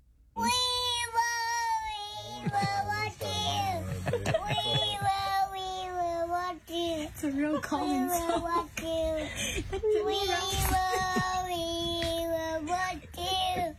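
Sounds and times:
toddler singing to soothe his baby sister: 0.4 - 13.7
laughter: 2.2 - 5.5, 7.2 - 11.9
speech: 7.1 - 13.7.

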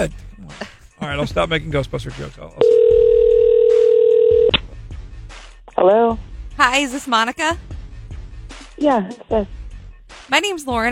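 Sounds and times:
speech: 0.0 - 2.7, 5.8 - 7.7, 8.8 - 9.6, 10.3 - 10.9
phone line dial tone: 2.6 - 4.6.

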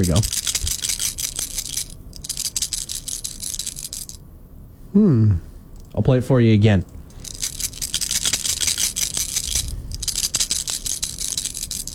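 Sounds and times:
speech: 0.0 - 0.5, 4.9 - 7.0
Skittles candies rattling as shaken in a cupped hand: 0.0 - 4.2, 7.0 - 11.9.

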